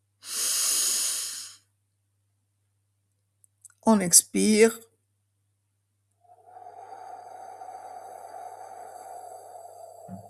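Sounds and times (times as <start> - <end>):
deep inhale during breathing exercise: 0.2 - 1.7, 6.2 - 10.2
speech: 3.9 - 4.9.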